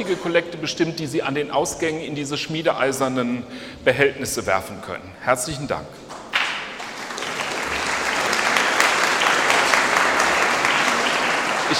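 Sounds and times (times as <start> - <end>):
speech: 0.0 - 6.1
large group clapping: 6.1 - 11.7.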